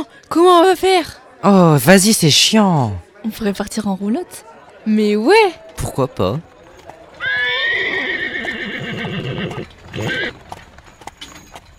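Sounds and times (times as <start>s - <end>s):
speech: 0.0s - 6.5s
horse hooves clip-clopping at a walking rhythm: 5.6s - 11.7s
horse whinny with bright wavering harmonics: 7.2s - 10.4s.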